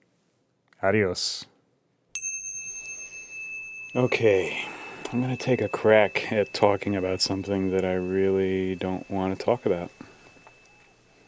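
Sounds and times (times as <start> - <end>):
speech: 0.8 - 1.5, 3.9 - 10.0
bell strike ringing: 2.2 - 11.2.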